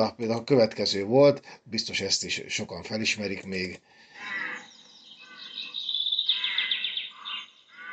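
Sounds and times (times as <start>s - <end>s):
speech: 0.0s - 4.4s
flock of rooks cawing: 4.1s - 7.9s.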